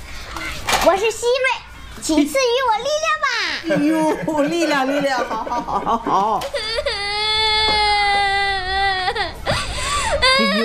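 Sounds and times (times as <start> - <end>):
speech: 0.8 - 6.6
laughter: 3.7 - 6.4
child crying: 6.4 - 10.6.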